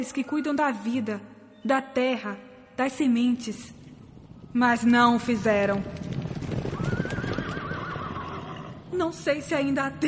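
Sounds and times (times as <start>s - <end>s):
speech: 0.0s - 3.8s, 4.5s - 6.1s, 9.0s - 10.0s
horses galloping: 3.9s - 8.9s
horse whinnying: 6.5s - 8.8s.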